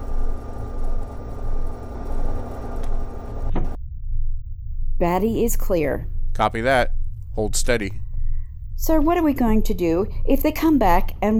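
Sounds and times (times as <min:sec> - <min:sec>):
spacecraft bay doors grinding open with a deep rumbling hum: 0:00.0 - 0:03.8
low drone: 0:00.0 - 0:11.3
speech: 0:05.0 - 0:08.0, 0:08.8 - 0:11.3.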